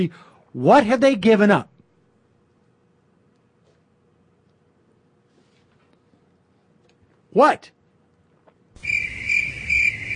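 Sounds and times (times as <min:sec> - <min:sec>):
speech: 0:00.0 - 0:01.7, 0:07.4 - 0:07.8
crickets chirping: 0:08.8 - 0:10.1.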